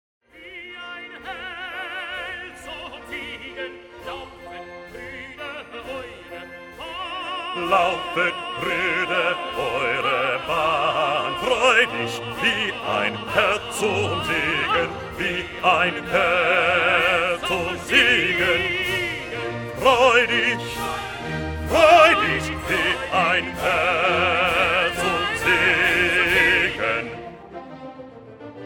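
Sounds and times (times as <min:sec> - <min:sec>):
bass voices singing: 0:00.3 - 0:27.4.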